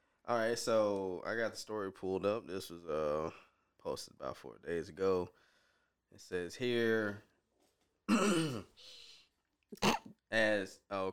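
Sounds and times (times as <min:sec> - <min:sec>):
speech: 0:00.3 - 0:05.5, 0:06.1 - 0:07.3, 0:08.1 - 0:09.0, 0:09.7 - 0:11.1
person clearing throat: 0:08.1 - 0:08.8, 0:09.8 - 0:10.2.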